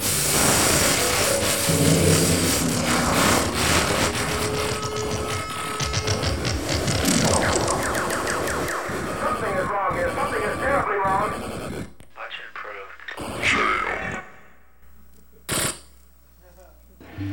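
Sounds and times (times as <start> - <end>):
buzzing tones: 0.0 - 12.0
harsh TV cable interference static hiss: 0.0 - 17.2
warbling siren-like electronic squeals: 0.9 - 10.9.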